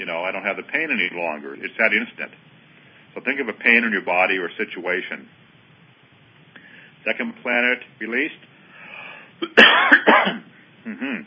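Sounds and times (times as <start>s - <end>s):
speech: 0.0s - 2.5s, 3.1s - 5.4s, 7.0s - 8.5s, 9.4s - 11.2s
throat clearing: 9.4s - 11.2s.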